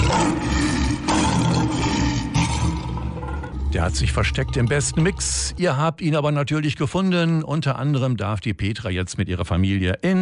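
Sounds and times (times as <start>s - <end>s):
lion roaring: 0.0s - 5.6s
speech: 3.8s - 10.2s.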